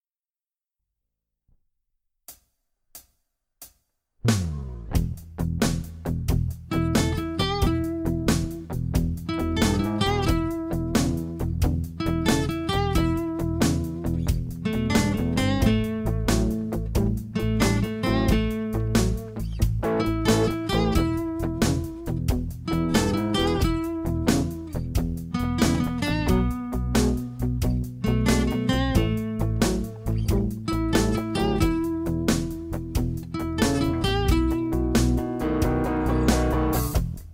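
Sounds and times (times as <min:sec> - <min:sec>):
guitar lick around the fret board: 0:04.2 - 0:37.3.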